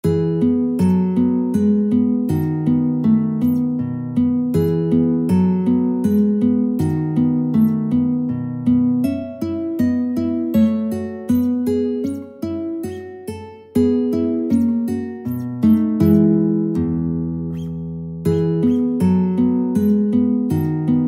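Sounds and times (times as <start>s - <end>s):
guitar piece: 0.0s - 21.0s.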